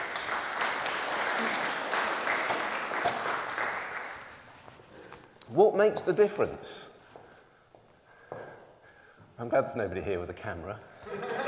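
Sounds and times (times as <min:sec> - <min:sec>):
crowd clapping: 0:00.0 - 0:04.4
speech: 0:05.6 - 0:06.9, 0:09.4 - 0:11.2
laughter: 0:11.0 - 0:11.4.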